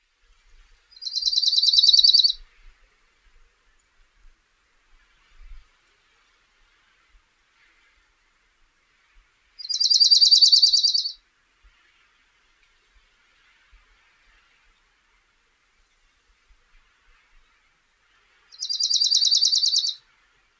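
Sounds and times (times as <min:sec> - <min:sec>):
dark-eyed junco calling: 0:01.0 - 0:02.4, 0:09.6 - 0:11.2, 0:18.5 - 0:20.0.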